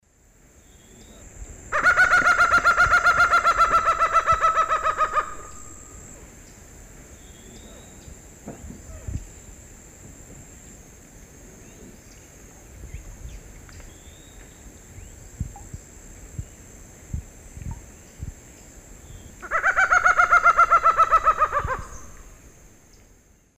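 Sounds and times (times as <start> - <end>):
Herpetotheres cachinnans laugh call in Eastern Lowlands of South America: 1.7 - 6.2, 19.4 - 22.2.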